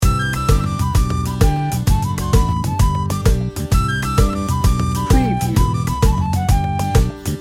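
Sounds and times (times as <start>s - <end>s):
Irish jig loop: 0.0s - 7.3s.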